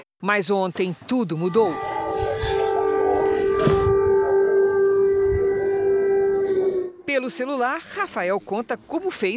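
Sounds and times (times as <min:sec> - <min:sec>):
speech: 0:00.2 - 0:01.9, 0:07.3 - 0:09.3
air raid siren wailing: 0:01.5 - 0:07.6.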